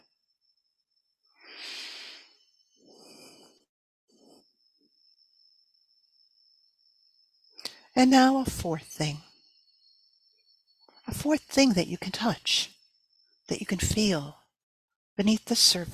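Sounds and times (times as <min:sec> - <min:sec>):
slow breathing in and out: 0:01.3 - 0:04.6
speech: 0:08.0 - 0:09.3, 0:11.2 - 0:12.8, 0:13.5 - 0:14.4, 0:15.2 - 0:15.9.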